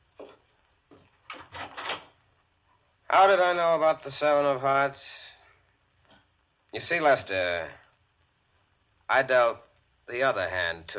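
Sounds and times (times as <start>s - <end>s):
door rattling as it swings and shuts: 1.3s - 2.2s
speech: 3.1s - 5.2s, 6.7s - 7.8s, 9.1s - 10.9s.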